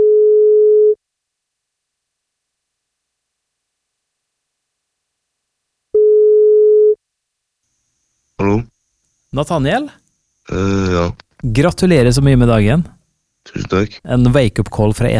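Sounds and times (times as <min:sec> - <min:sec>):
telephone ringback tone on an outgoing radio call: 0:00.0 - 0:01.0, 0:06.0 - 0:07.0
speech: 0:09.4 - 0:15.1.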